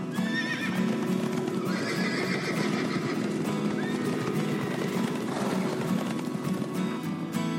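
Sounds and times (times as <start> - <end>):
horse hooves clip-clopping at a walking rhythm: 0.1 - 7.4
horse neighing and whinnying: 0.2 - 5.9.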